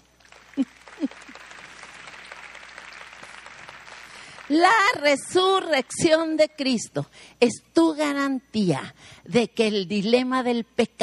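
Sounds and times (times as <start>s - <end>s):
audience applause: 0.0s - 5.0s
speech: 4.5s - 11.0s.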